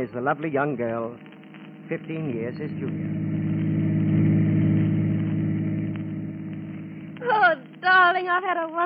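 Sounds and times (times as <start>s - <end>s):
speech: 0.0s - 1.3s, 1.9s - 3.6s, 7.2s - 8.8s
chauffeur-driven car engine humming heard from inside the moving car: 1.9s - 7.5s.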